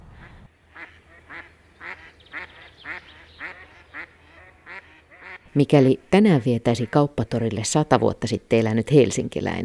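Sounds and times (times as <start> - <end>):
mallard ducks quacking: 0.7 - 6.0, 6.7 - 7.2
speech: 5.5 - 9.6.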